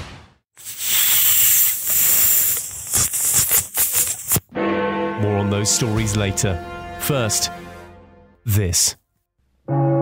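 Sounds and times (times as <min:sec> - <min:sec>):
person imitating a hissing snake: 0:00.6 - 0:04.4
speech: 0:05.4 - 0:07.7, 0:08.4 - 0:09.0, 0:09.7 - 0:09.9.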